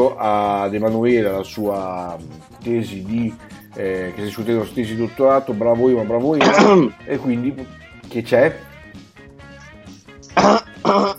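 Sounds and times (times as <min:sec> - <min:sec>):
speech: 0:00.0 - 0:08.7, 0:10.4 - 0:11.1
person with a cough coughing: 0:06.4 - 0:06.9, 0:10.3 - 0:11.1.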